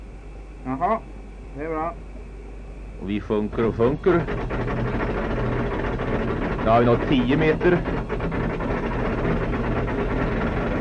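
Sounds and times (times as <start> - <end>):
speech: 0.6 - 2.2, 3.0 - 4.9, 6.2 - 8.4
motor-driven cable winch lowering diving bell: 3.0 - 10.8.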